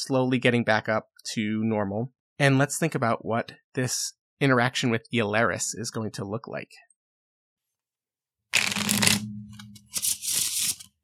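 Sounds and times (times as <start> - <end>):
speech: 0.0 - 6.9
deck of playing cards being riffled and handled: 8.6 - 10.9.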